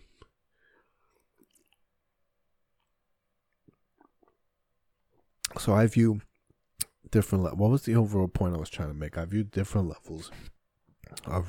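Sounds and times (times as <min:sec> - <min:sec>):
person sipping water: 0:00.2 - 0:02.0, 0:02.8 - 0:04.5, 0:11.0 - 0:11.3
speech: 0:05.6 - 0:06.3, 0:07.1 - 0:10.5, 0:11.2 - 0:11.4.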